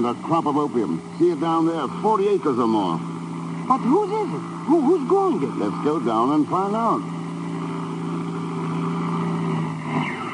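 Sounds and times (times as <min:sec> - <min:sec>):
speech: 0:00.0 - 0:03.1, 0:03.7 - 0:07.2
airplane motor droning over a canyon after the switch is cut: 0:00.0 - 0:10.3.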